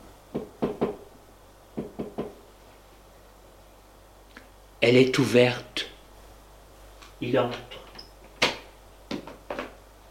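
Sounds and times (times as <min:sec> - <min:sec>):
soft knocking on a young woman's bedroom door: 0:00.3 - 0:01.0, 0:01.8 - 0:02.4
speech: 0:04.8 - 0:05.9, 0:07.2 - 0:07.8.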